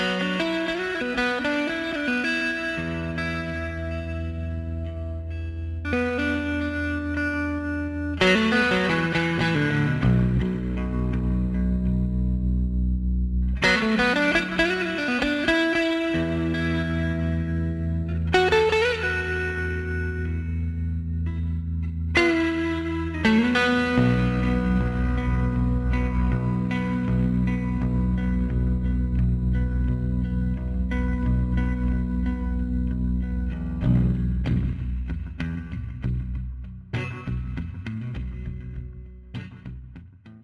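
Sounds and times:
distorted guitar chords with reverb and echo: 0:00.0 - 0:40.4.

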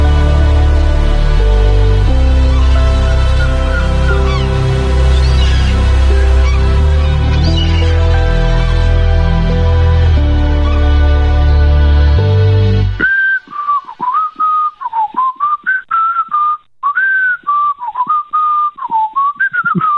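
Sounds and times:
loud burst of droning tone: 0:00.0 - 0:13.0
person whistling a lively tune over a telephone line: 0:13.0 - 0:19.9.

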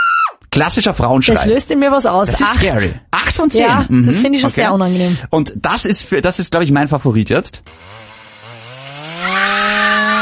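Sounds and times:
speech: 0:00.6 - 0:08.1
chainsaw engine revving: 0:07.7 - 0:10.1.

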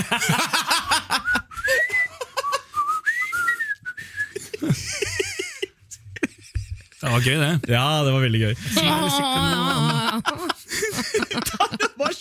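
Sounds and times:
speech: 0:00.0 - 0:00.5, 0:07.2 - 0:10.4
people laughing and giggling: 0:00.0 - 0:02.7, 0:04.3 - 0:07.9, 0:08.7 - 0:12.1
person whistling a wavering sliding tune: 0:01.2 - 0:04.4.

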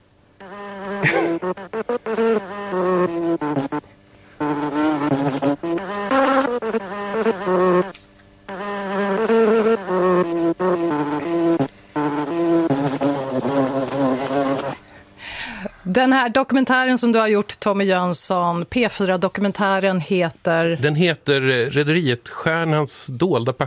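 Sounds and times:
insects buzzing: 0:00.2 - 0:14.9
speech: 0:01.0 - 0:03.0, 0:16.2 - 0:23.6.

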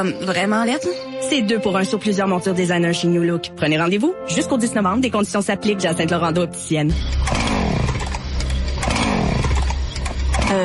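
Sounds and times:
speech: 0:00.0 - 0:07.4
chainsaw engine revving outside: 0:07.2 - 0:10.6.

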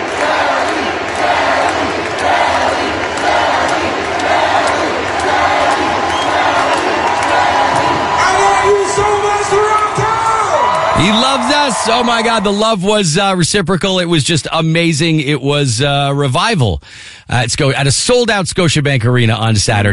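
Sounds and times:
huge arena concert crowd roaring and cheering: 0:00.0 - 0:13.4
speech: 0:11.0 - 0:19.9.

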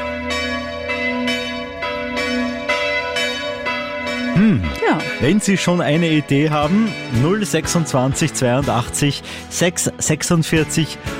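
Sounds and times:
church bells pealing: 0:00.0 - 0:08.7
speech: 0:04.5 - 0:11.1.

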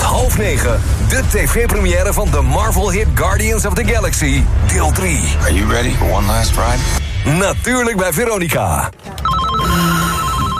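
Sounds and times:
speech: 0:00.4 - 0:10.0
telephone ringing with an electronic trill: 0:09.2 - 0:10.5.

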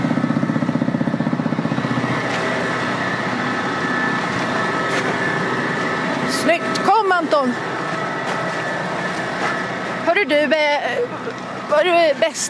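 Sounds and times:
tractor engine idling on a farm: 0:00.0 - 0:12.4
speech: 0:07.4 - 0:07.7, 0:10.2 - 0:12.4.

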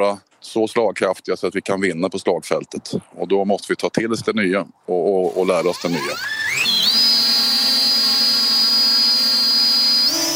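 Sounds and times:
speech: 0:00.0 - 0:06.8
small drone motors whining during takeoff and hover: 0:05.2 - 0:10.3.

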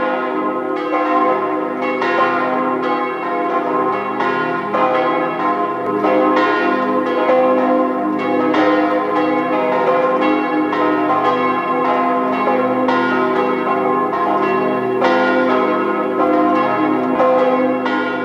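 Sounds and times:
several church bells pealing at noon: 0:00.0 - 0:18.2.

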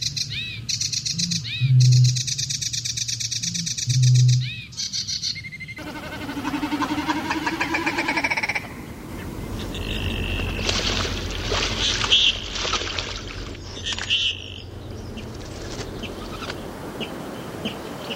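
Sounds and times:
marsh warbler singing: 0:00.0 - 0:18.1
outdoor noise: 0:00.0 - 0:18.1
low rumbling: 0:05.8 - 0:17.6.

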